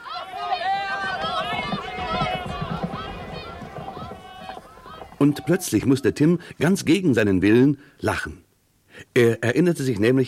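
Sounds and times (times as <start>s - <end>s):
crowd of spectators shouting and cheering at a horse race: 0.0s - 6.4s
speech: 5.2s - 8.4s, 9.1s - 10.2s.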